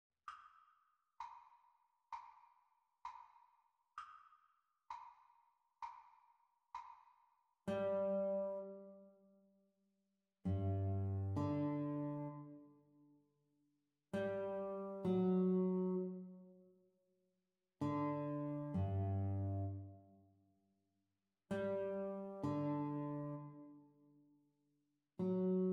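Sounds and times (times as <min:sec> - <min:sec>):
guitar duet: 0:07.7 - 0:09.0, 0:10.5 - 0:12.6, 0:14.2 - 0:16.3, 0:17.8 - 0:19.9, 0:21.5 - 0:23.8, 0:25.2 - 0:25.7.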